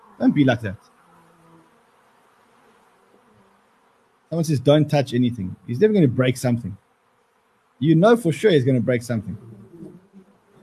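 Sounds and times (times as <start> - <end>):
swarm of bees buzzing: 0.0 - 10.6
speech: 0.2 - 0.9, 4.3 - 6.8, 7.8 - 9.6.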